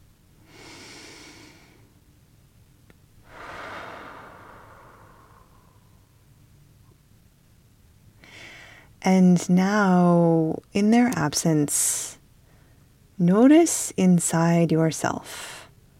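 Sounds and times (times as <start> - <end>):
slow deep breaths during a guided meditation: 0.4 - 2.0, 3.2 - 6.3, 8.2 - 9.0
speech: 9.0 - 12.2, 13.2 - 15.6.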